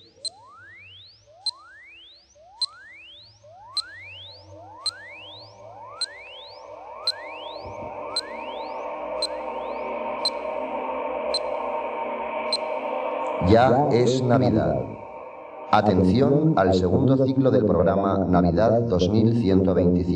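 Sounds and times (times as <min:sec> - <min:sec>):
time signal pips counting down: 0:00.0 - 0:10.7, 0:11.3 - 0:11.7, 0:12.5 - 0:15.1
rising sweep tones: 0:00.0 - 0:17.9
speech: 0:13.5 - 0:14.9, 0:15.7 - 0:20.1.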